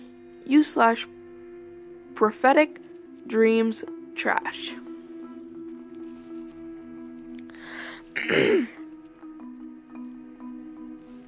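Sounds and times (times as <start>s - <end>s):
speech: 0.5s - 1.2s, 2.2s - 4.9s, 8.2s - 8.7s
person clearing spit from throat: 8.2s - 8.8s.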